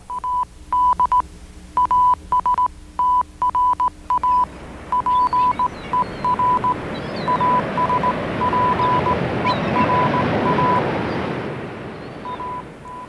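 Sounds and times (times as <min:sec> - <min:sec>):
Morse code beeps sending a message in Latin: 0:00.0 - 0:01.2, 0:01.8 - 0:09.2, 0:09.8 - 0:10.9, 0:12.2 - 0:13.0
rushing roar before a rocket launch: 0:04.5 - 0:13.0.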